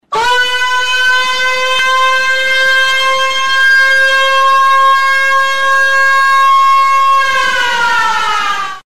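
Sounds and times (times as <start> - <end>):
siren: 0.0 - 8.8.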